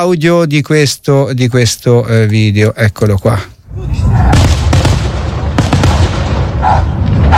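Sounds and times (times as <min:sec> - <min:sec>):
speech: 0:00.0 - 0:04.6
fireworks exploding with sharp bangs and deep booms: 0:04.2 - 0:07.3.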